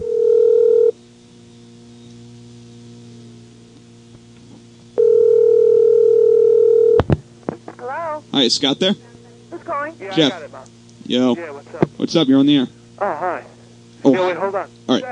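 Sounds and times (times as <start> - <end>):
telephone dial tone: 0.0 - 0.9, 5.0 - 7.0
speech: 8.4 - 9.1, 9.9 - 13.4, 14.2 - 15.1.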